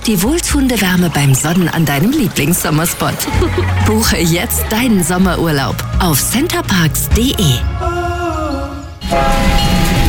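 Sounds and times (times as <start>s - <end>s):
speech: 0.0s - 7.9s
laughter: 2.9s - 5.4s
park railway steam locomotive whistle in Cottbus: 9.0s - 10.0s.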